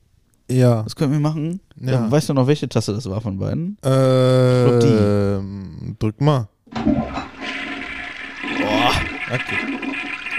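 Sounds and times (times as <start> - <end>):
speech: 0.5 - 7.2, 9.3 - 10.1
toilet flushing: 6.7 - 10.3.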